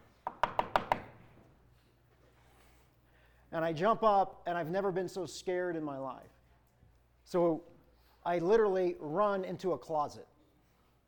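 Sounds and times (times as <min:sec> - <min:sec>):
sharp knocks on a wooden door: 0:00.3 - 0:01.1
speech: 0:03.5 - 0:06.4, 0:07.3 - 0:10.3.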